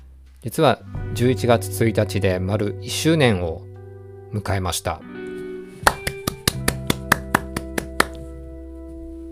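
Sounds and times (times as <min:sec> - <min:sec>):
speech: 0:00.4 - 0:03.7, 0:04.3 - 0:05.2
person clapping hands: 0:05.8 - 0:08.3.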